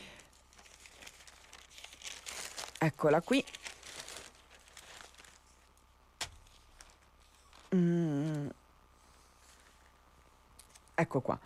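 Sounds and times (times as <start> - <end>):
newspaper pages being turned: 0.2 - 7.8
speech: 2.8 - 3.6, 11.0 - 11.4.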